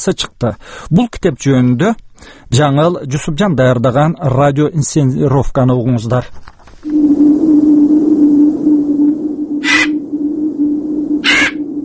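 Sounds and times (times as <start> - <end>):
speech: 0.0 - 7.1
steady low droning hum: 6.8 - 11.8
crow cawing: 9.6 - 10.0, 11.2 - 11.6.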